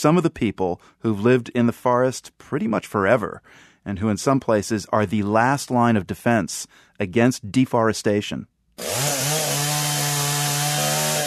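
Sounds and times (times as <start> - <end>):
speech: 0.0 - 9.1
chainsaw cutting into a wooden timber hauler in Maranhão Brazil: 8.8 - 11.2.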